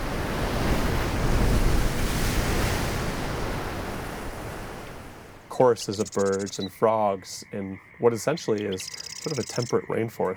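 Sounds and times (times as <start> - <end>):
waves battering a shore: 0.0 - 6.9
wind rushing through coastal trees: 0.0 - 6.9
speech: 5.6 - 10.3.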